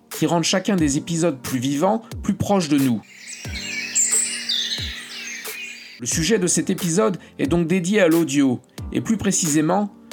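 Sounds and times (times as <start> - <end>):
speech: 0.2 - 3.6, 6.0 - 10.0
several birds chirping in spring: 3.1 - 6.0.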